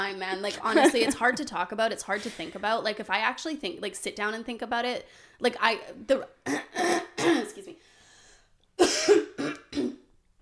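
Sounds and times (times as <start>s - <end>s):
speech: 0.0s - 7.8s, 8.8s - 9.6s
moist phlegmy cough: 6.5s - 7.6s, 8.8s - 10.0s.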